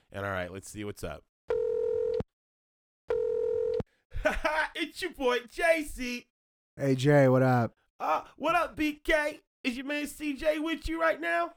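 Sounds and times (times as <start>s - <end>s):
speech: 0.2s - 1.3s, 4.8s - 11.5s
cell phone call ringing tones on the line: 1.5s - 2.2s, 3.1s - 3.8s
laughter: 4.2s - 4.9s.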